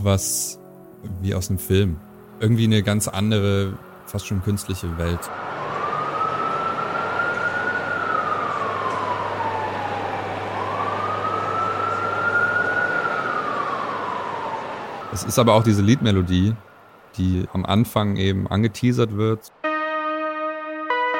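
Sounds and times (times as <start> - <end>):
speech: 0.0 - 5.5, 15.2 - 19.6
dense city traffic rumble: 0.0 - 19.6
American city emergency vehicle siren wailing in long sweeps: 4.4 - 17.1, 19.6 - 21.1.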